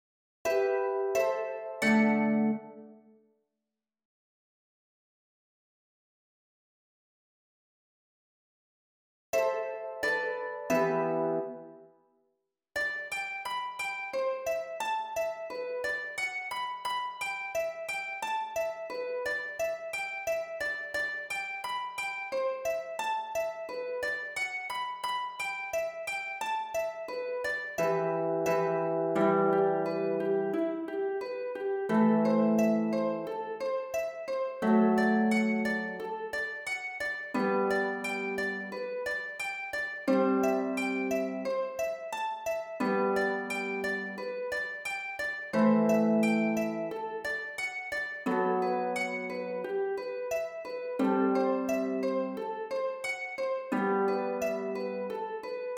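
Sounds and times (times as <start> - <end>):
harp: 0.5 - 3.0, 9.4 - 11.9, 12.8 - 55.7.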